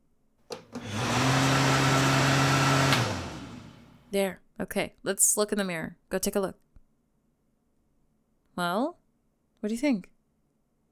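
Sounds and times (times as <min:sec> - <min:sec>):
hand dryer blowing air: 0:00.6 - 0:04.0
speech: 0:04.1 - 0:06.6, 0:08.6 - 0:09.0, 0:09.6 - 0:10.1.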